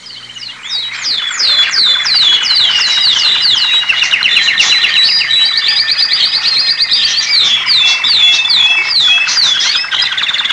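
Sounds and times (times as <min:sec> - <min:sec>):
canaries chirping: 0:00.0 - 0:10.5.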